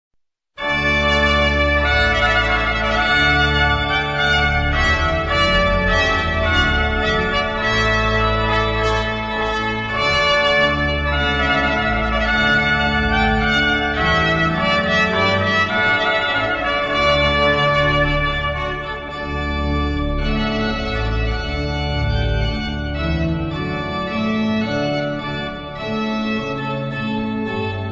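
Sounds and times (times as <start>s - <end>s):
organ: 0.6s - 27.8s
trumpet: 0.6s - 27.8s.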